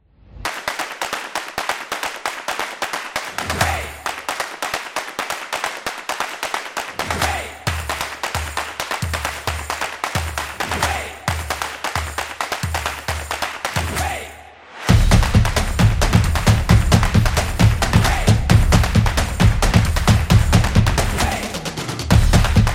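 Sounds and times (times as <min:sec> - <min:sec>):
claps: 0:00.4 - 0:22.7
drums: 0:14.9 - 0:22.7.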